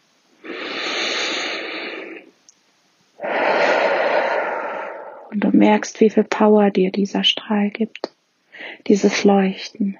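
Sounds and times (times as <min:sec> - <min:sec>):
deep breaths during a guided meditation: 0:00.4 - 0:02.3, 0:03.2 - 0:05.5
speech: 0:05.6 - 0:09.9.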